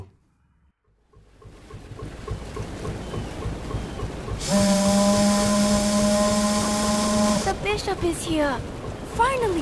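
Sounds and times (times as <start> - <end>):
steamship engine chugging entering harbor: 0.8 - 9.6
steamship steam whistle blast: 4.4 - 7.5
speech: 7.9 - 9.6.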